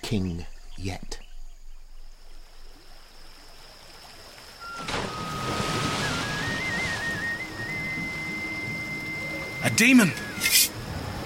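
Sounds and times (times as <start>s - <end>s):
speech: 0.1s - 1.2s, 9.8s - 10.7s
rushing churning river water becoming a whirlpool: 1.8s - 11.2s
thin whistling tone sliding upward: 4.6s - 10.8s.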